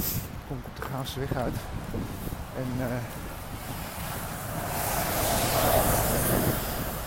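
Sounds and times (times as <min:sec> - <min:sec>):
bus engine and road noise roar: 0:00.0 - 0:07.0
speech: 0:00.5 - 0:03.2
bus passing by: 0:01.5 - 0:07.0.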